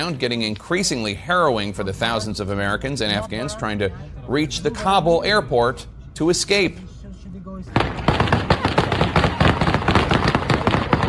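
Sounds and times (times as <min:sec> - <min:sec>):
speech: 0:00.0 - 0:06.9
rapid gunfire fired to disperse crowds outside Kabul airport: 0:07.8 - 0:11.0.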